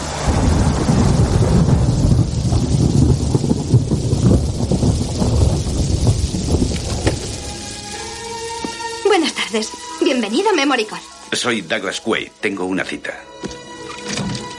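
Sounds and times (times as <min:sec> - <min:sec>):
deep rolling rumbles of thunder: 0:00.0 - 0:08.4
heavy rainstorm pouring: 0:00.0 - 0:14.5
speech: 0:09.5 - 0:13.6.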